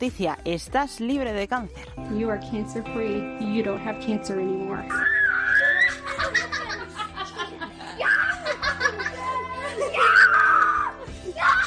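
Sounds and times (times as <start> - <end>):
speech: 0.0 - 5.2
two children shrieking and squealing with joy: 4.9 - 6.5, 8.0 - 11.6
children giggling and laughing: 5.5 - 10.6.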